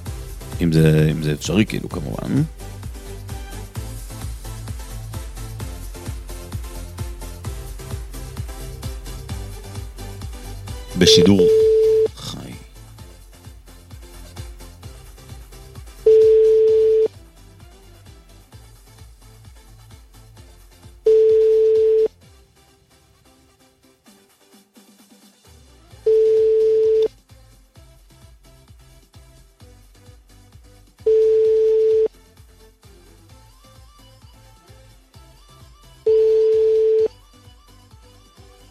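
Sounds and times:
low murmur of music: 0.0 - 38.7
speech: 0.6 - 2.7, 11.0 - 11.6
telephone busy signal tones: 11.0 - 12.6, 16.1 - 17.1, 21.1 - 22.1, 26.1 - 27.1, 31.1 - 32.1, 36.1 - 37.2.

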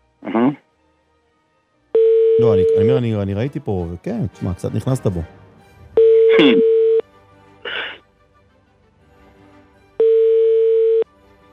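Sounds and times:
phone ringback tone on a call to a mobile phone: 2.0 - 2.9, 6.0 - 7.0, 10.0 - 11.1
speech: 2.5 - 5.4
short breathy noises: 7.6 - 8.0.

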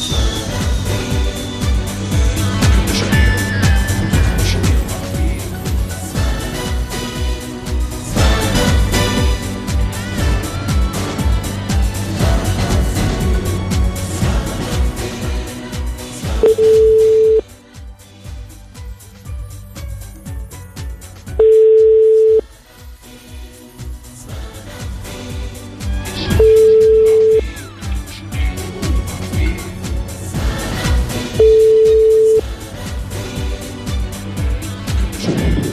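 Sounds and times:
busy music: 0.0 - 35.7
telephone ringing tone: 16.4 - 17.4, 21.4 - 22.4, 26.4 - 27.5, 31.4 - 32.4.

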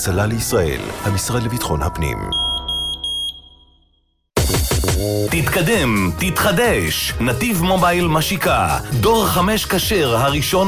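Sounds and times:
speech: 0.0 - 2.5, 4.9 - 10.6
smoke detector alarm: 2.2 - 4.2.

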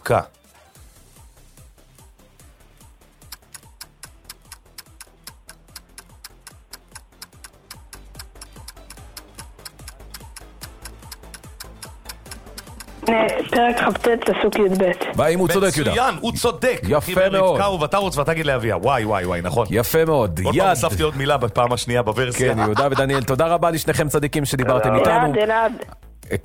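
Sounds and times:
speech: 0.1 - 0.4, 13.1 - 26.4
clock ticking: 3.2 - 16.2
laughter: 22.3 - 23.5.

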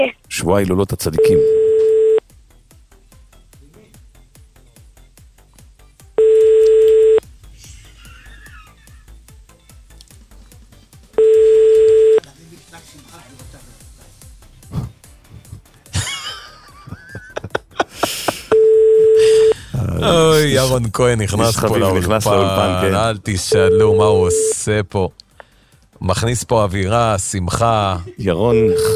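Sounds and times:
speech: 0.0 - 1.9, 20.4 - 25.2, 26.0 - 28.9
telephone ringback tone as a call is placed: 1.2 - 2.2, 6.2 - 7.2, 11.2 - 12.2, 18.5 - 19.6, 23.5 - 24.6, 28.5 - 28.9
laughter: 7.6 - 9.2, 15.9 - 18.6.

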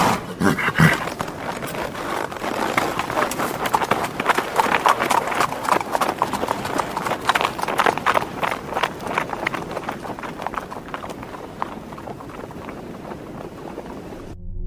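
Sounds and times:
horse hooves clip-clopping: 0.2 - 14.4.

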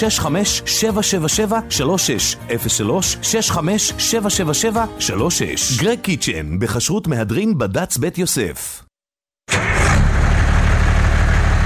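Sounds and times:
speech: 0.0 - 8.8
old diesel engine starting up and idling: 9.5 - 11.6.

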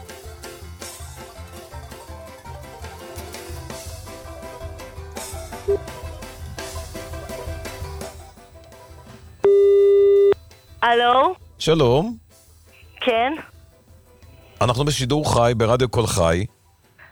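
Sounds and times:
music: 0.0 - 17.0
telephone call tone while dialing a listener: 9.4 - 11.4
speech: 10.8 - 12.2, 13.0 - 13.5, 14.6 - 16.6.

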